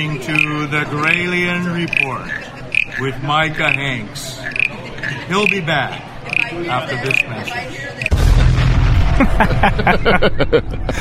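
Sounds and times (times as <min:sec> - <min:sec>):
speech: 0:00.0 - 0:04.6, 0:05.3 - 0:07.9, 0:09.2 - 0:10.9
laughter: 0:04.7 - 0:05.6, 0:09.0 - 0:10.9
explosion sound effect in a radio show bumper: 0:08.1 - 0:10.4.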